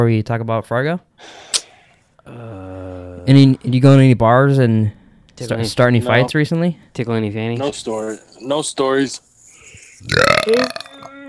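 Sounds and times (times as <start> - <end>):
speech: 0.0 - 1.7, 2.3 - 9.3, 10.0 - 10.9
person burping: 2.2 - 3.6, 10.0 - 11.2.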